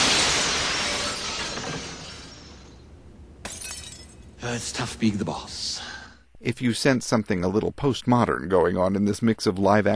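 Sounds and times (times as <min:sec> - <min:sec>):
large plate glass window shattering: 0:00.0 - 0:02.7, 0:03.4 - 0:04.3
glittering glass shards tinkling and rattling down: 0:03.4 - 0:04.3
speech: 0:04.4 - 0:09.9.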